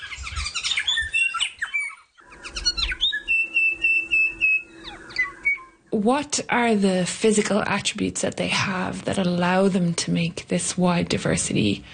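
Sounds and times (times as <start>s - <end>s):
young songbird about 13 to 14 weeks old practising its species song: 0.0s - 5.9s
speech: 6.0s - 11.9s.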